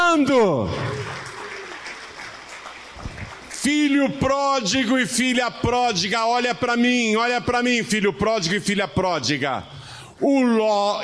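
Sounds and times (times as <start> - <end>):
congregation applauding at a church service: 0.0 - 4.9
speech: 0.1 - 0.9, 3.6 - 11.0.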